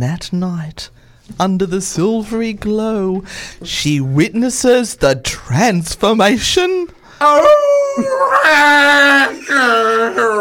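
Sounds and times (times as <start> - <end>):
speech: 0.0 - 10.3
wolf howling: 7.2 - 10.3.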